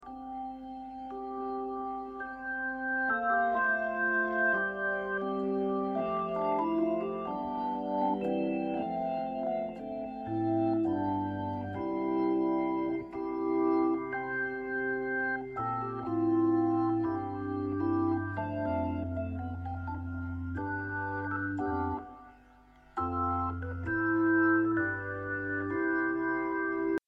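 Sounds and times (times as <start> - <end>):
big clean Hammond T522 organ: 0.0 - 27.0.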